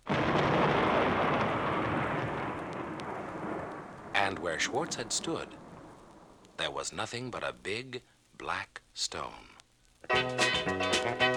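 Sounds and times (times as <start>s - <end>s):
loud crash of thunder rolling into a sustained rumble: 0.0s - 6.6s
speech: 4.3s - 5.6s, 6.6s - 9.5s, 10.1s - 11.3s.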